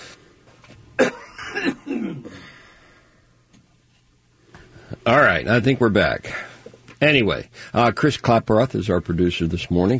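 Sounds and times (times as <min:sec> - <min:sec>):
person with a scratchy throat coughing: 0:01.0 - 0:02.5
raspy throat-clearing from a scratchy throat: 0:01.0 - 0:02.5
speech: 0:05.1 - 0:09.9.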